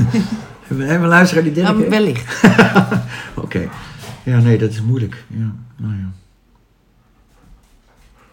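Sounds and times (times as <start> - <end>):
laughter: 0.0 - 0.7, 2.2 - 3.4
dogs growling: 0.0 - 4.9
speech: 0.1 - 6.2.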